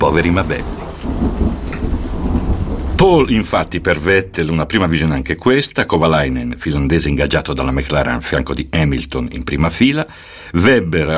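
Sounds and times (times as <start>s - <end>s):
speech: 0.0s - 1.2s, 3.0s - 11.1s
heavy rain on a motor racing weekend: 0.0s - 5.3s
deep rumbling undertone: 0.0s - 9.8s.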